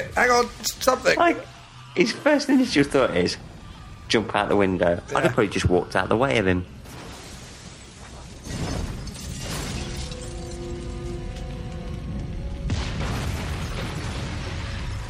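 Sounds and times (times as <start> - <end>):
speech: 0.0 - 3.5, 4.1 - 6.8
van exploding: 6.8 - 10.5, 12.7 - 15.0.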